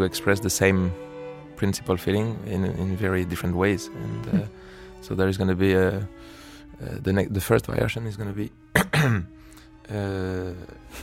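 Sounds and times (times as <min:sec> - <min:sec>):
speech: 0:00.0 - 0:11.0
person clearing throat: 0:08.7 - 0:09.3
person coughing with a harsh voiced rasp: 0:08.7 - 0:09.3.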